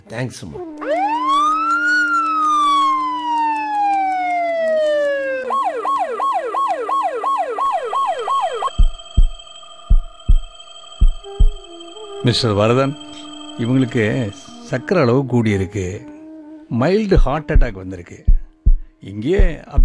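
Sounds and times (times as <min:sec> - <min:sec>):
speech: 0:00.1 - 0:01.2, 0:12.2 - 0:16.1, 0:16.7 - 0:18.3, 0:19.0 - 0:19.8
ambulance siren wailing and yelping: 0:00.5 - 0:19.8
deep heartbeat-like thumps: 0:08.5 - 0:11.7, 0:17.1 - 0:19.8.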